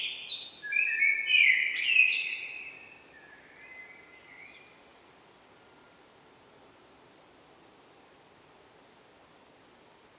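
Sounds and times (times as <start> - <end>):
Eurasian blackbird Turdus merula song: 0.0 - 5.0.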